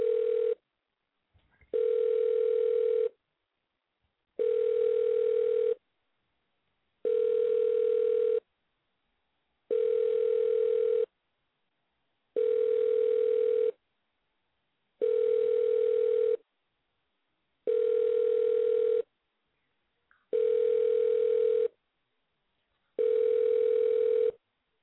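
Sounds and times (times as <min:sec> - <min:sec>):
outgoing prank phone call ringback tones: 0:00.0 - 0:00.6, 0:01.7 - 0:03.1, 0:04.4 - 0:05.8, 0:07.0 - 0:08.4, 0:09.7 - 0:11.1, 0:12.4 - 0:13.8, 0:15.0 - 0:16.4, 0:17.7 - 0:19.1, 0:20.3 - 0:21.7, 0:23.0 - 0:24.4.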